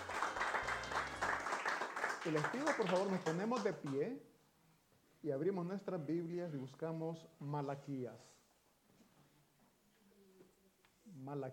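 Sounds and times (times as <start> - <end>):
congregation applauding: 0.0 - 4.0
speech: 2.2 - 4.3, 5.2 - 8.4, 11.1 - 11.5.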